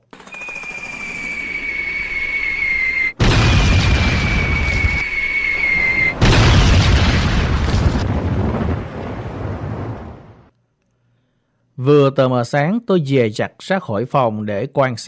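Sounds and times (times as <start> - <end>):
thin high whine: 0.1 - 6.6
enemy artillery shells exploding across a base: 3.2 - 10.3
speech: 11.8 - 15.0.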